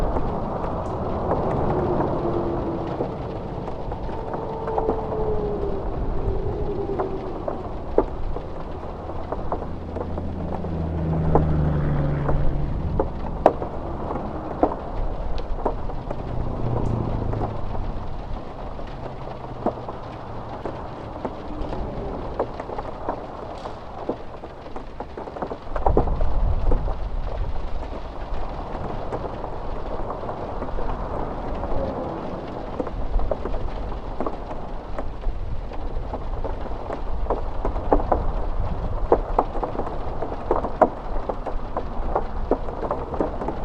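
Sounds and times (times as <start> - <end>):
passing cars humming: 0.0 - 24.3
rain pattering on a roof: 0.0 - 43.6.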